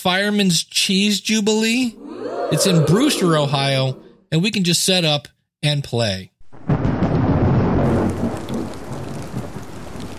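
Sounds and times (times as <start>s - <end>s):
speech: 0.0s - 6.7s
constant heavy rain on a festival day: 6.5s - 10.1s.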